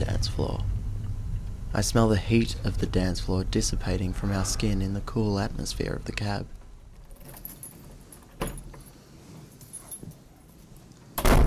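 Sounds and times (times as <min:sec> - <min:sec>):
faint hum of traffic: 0:00.0 - 0:11.2
speech: 0:00.3 - 0:00.8, 0:01.7 - 0:06.6
keys jingling and rattling: 0:06.8 - 0:11.0
front door swinging shut with a solid loud thud: 0:08.3 - 0:08.8.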